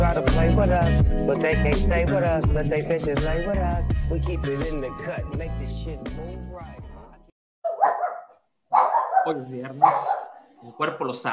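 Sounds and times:
speech: 0.2s - 6.8s, 9.2s - 11.3s
dog barking: 7.6s - 10.8s.

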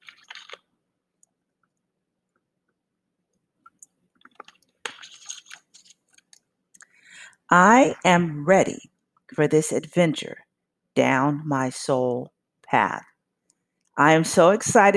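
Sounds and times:
gulps and swallows of water: 0.0s - 0.7s, 3.6s - 7.0s
person sipping water: 0.0s - 0.7s, 3.6s - 7.0s
speech: 7.5s - 10.4s, 11.0s - 13.1s, 14.0s - 14.9s.

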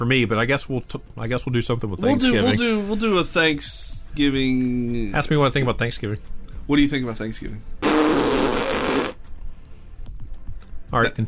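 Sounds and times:
speech: 0.0s - 7.8s, 10.9s - 11.2s
person imitating a fart with the mouth: 7.8s - 9.2s.

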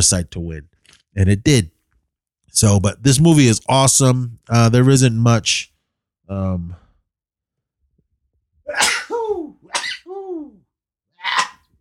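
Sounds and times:
speech: 0.0s - 1.7s, 2.5s - 5.7s, 6.3s - 6.8s
person sneezing loudly: 8.7s - 10.6s.

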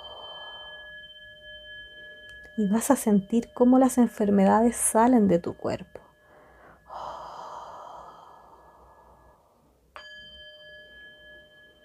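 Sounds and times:
slow deep breathing in and out: 0.0s - 1.0s, 6.2s - 9.9s
bright chime-like ring: 0.0s - 7.0s, 9.9s - 11.8s
soft sustained musical tones: 0.0s - 11.8s
speech: 2.6s - 6.0s.

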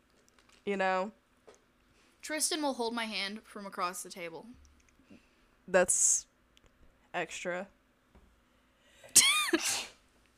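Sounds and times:
speech: 0.7s - 1.2s, 2.3s - 4.7s, 5.7s - 6.3s, 7.1s - 7.8s, 9.5s - 9.9s
person sneezing: 9.1s - 10.0s.

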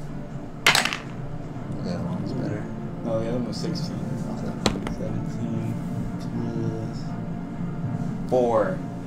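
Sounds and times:
dice rolling on a table in a role-playing game: 0.7s - 1.2s
speech: 1.9s - 7.3s, 8.3s - 8.9s.

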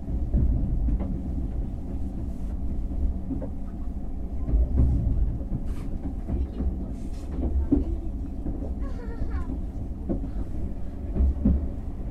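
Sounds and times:
sleeper express train running rumble from inside: 0.0s - 12.0s
faint voices: 3.5s - 10.8s.

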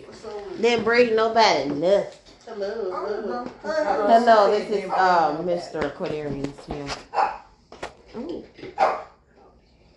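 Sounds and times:
speech: 0.6s - 7.4s
dog barking: 7.1s - 7.5s, 8.8s - 9.2s.

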